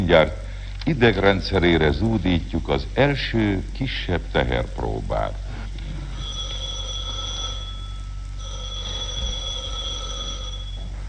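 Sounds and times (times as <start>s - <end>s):
speech: 0.0s - 5.4s
low rumble: 0.0s - 9.9s
telephone ringing for an early-morning wake-up service call: 6.1s - 11.0s.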